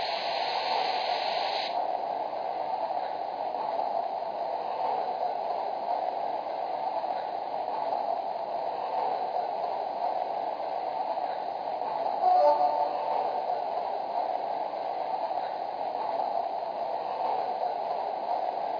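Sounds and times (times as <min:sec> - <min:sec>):
passenger train pulling away from station: 0:00.0 - 0:18.7
faint horn-like tone: 0:12.2 - 0:13.4.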